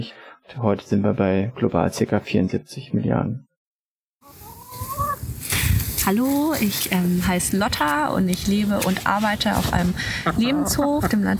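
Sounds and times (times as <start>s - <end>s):
speech: 0.0s - 3.5s, 6.0s - 11.3s
hens clucking on an animal sanctuary farm: 4.2s - 5.3s, 7.9s - 11.3s
farmyard background: 4.2s - 11.3s
rustling: 4.4s - 10.9s.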